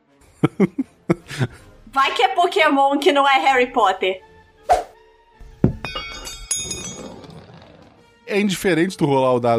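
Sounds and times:
laughter: 0:00.4 - 0:01.6
speech: 0:00.4 - 0:04.8, 0:08.3 - 0:09.5
glass ball bouncing on a hard floor: 0:05.6 - 0:08.0.

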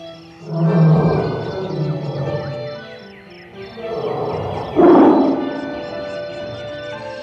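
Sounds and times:
tiger roaring: 0:00.4 - 0:02.8, 0:03.7 - 0:06.6.

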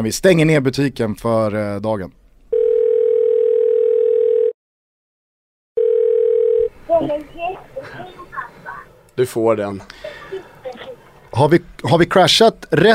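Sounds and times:
speech: 0:00.0 - 0:02.2, 0:09.2 - 0:10.2, 0:11.3 - 0:12.9
telephone ringback tone while placing a call: 0:02.5 - 0:04.6, 0:05.8 - 0:06.7.

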